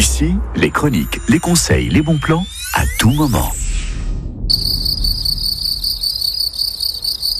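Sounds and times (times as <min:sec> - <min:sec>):
speech: 0:00.2 - 0:03.6
field cricket chirping in a rural setting: 0:04.5 - 0:07.3.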